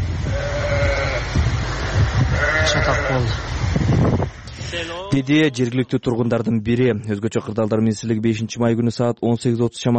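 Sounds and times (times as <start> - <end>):
low rumble: 0.0 - 5.2
sheep bleating in a livestock pen during a mudflow in Jalal-Abad, Kyrgyzstan: 0.3 - 1.4, 2.3 - 3.3
speech: 3.2 - 3.5, 4.8 - 9.9.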